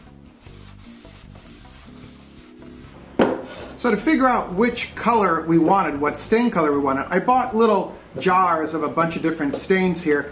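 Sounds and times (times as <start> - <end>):
tack cloth wiped across freshly sanded wood: 0.4 - 3.0
speech: 3.8 - 10.3.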